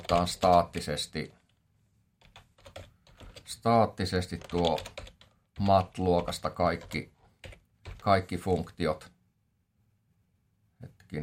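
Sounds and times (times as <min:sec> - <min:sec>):
typing code on a computer keyboard: 0:00.0 - 0:01.5, 0:02.2 - 0:03.6, 0:04.2 - 0:08.2
speech: 0:00.1 - 0:01.4, 0:03.5 - 0:05.0, 0:05.6 - 0:07.1, 0:08.0 - 0:09.1, 0:10.8 - 0:11.2.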